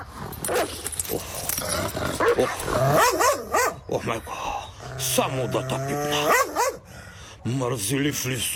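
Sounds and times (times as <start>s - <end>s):
dog barking and growling at a henhouse: 0.0s - 3.9s, 4.8s - 6.9s
speech: 4.0s - 6.5s, 7.5s - 8.5s.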